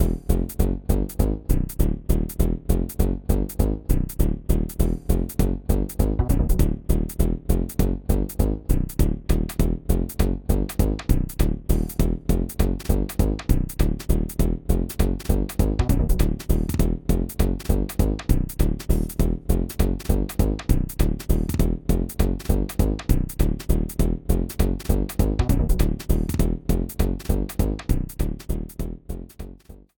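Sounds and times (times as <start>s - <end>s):
casino slot game background music: 0.0s - 29.8s.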